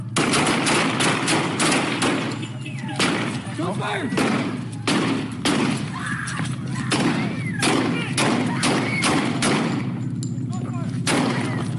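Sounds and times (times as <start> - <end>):
gunfire in crossfire around a stopped car: 0.1 - 5.9, 6.9 - 10.0, 11.1 - 11.7
voices shouting: 2.4 - 9.9
speech: 3.7 - 4.6.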